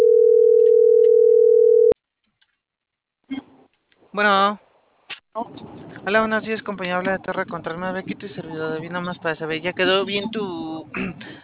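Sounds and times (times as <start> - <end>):
telephone line tone while a call is dialed: 0.0 - 2.0
speech: 4.2 - 4.6, 5.4 - 11.4.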